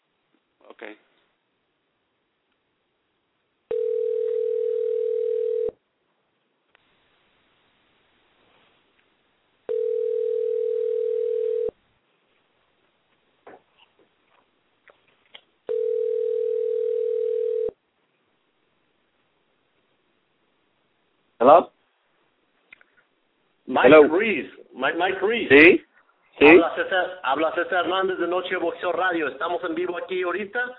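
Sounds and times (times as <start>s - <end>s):
speech: 0.8s - 1.1s, 21.4s - 21.7s, 23.8s - 30.7s
telephone ringback tone while calling someone for a phone interview: 3.7s - 5.8s, 9.7s - 11.8s, 15.7s - 17.8s.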